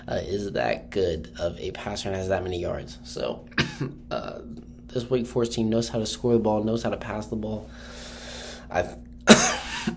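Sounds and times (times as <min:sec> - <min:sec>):
speech: 0:00.1 - 0:08.0, 0:08.7 - 0:09.9
person coughing: 0:03.5 - 0:04.0, 0:09.3 - 0:09.9.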